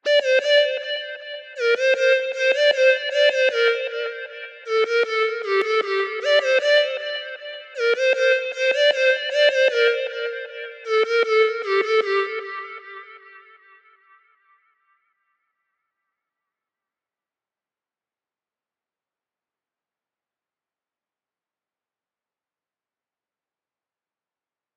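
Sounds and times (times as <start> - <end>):
lead melody in G minor at 155 BPM: 0.1 - 12.8.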